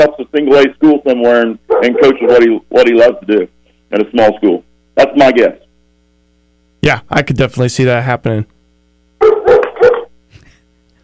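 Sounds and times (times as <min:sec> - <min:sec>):
speech: 0:00.0 - 0:05.6, 0:06.8 - 0:08.5
dog barking: 0:01.7 - 0:02.4, 0:09.2 - 0:10.1.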